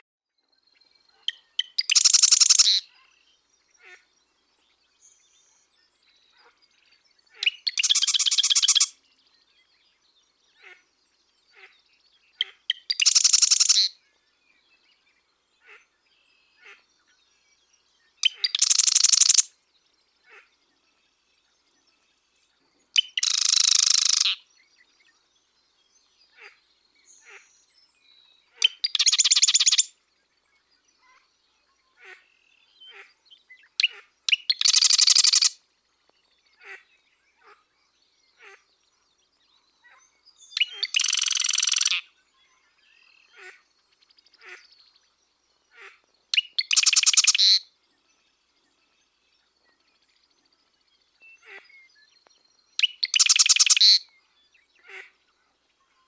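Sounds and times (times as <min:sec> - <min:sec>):
western marsh wren normal songs: 0:00.6 - 0:04.0, 0:06.8 - 0:10.8, 0:11.6 - 0:14.0, 0:16.6 - 0:19.5, 0:22.8 - 0:25.6, 0:27.0 - 0:29.9, 0:32.0 - 0:35.6, 0:37.4 - 0:55.0.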